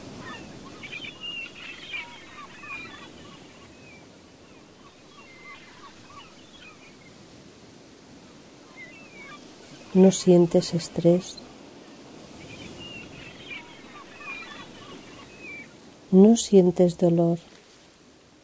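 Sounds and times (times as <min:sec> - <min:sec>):
seagulls calling over ocean waves: 0:00.0 - 0:07.1, 0:08.6 - 0:11.4, 0:12.0 - 0:15.8
steady wash of ocean surf: 0:00.0 - 0:18.4
speech: 0:10.0 - 0:11.4, 0:16.2 - 0:17.6.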